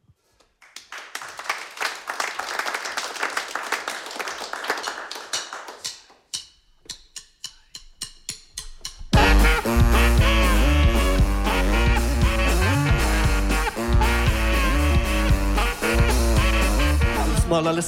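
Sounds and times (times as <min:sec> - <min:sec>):
brass band with saxophones playing: 0:09.2 - 0:17.8
speech: 0:17.6 - 0:17.8.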